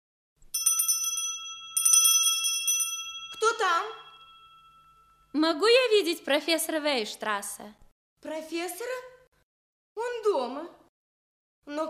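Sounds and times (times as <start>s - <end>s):
doorbell ringing at a professor's house in Berlin: 0.5s - 5.4s
speech: 5.4s - 9.1s, 10.0s - 10.8s, 11.7s - 11.8s.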